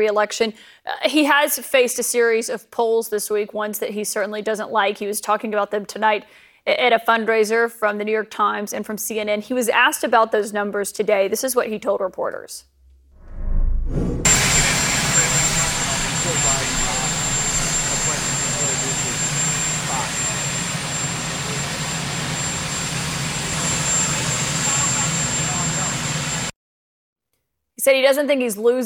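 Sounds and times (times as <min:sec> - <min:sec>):
speech: 0:00.0 - 0:12.7, 0:13.9 - 0:14.4, 0:27.8 - 0:28.8
presidential helicopter turbine engines roaring and whining: 0:14.2 - 0:26.5.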